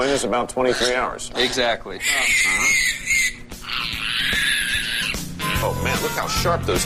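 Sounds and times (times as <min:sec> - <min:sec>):
speech: 0:00.0 - 0:03.2, 0:05.6 - 0:06.8
newborn male piglet squealing while handled: 0:00.0 - 0:06.7.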